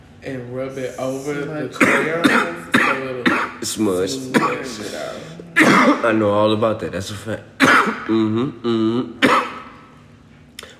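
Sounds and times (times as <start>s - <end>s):
speech: 0.2s - 9.3s
person coughing after smoking: 1.8s - 3.6s, 4.3s - 6.2s, 7.6s - 9.8s.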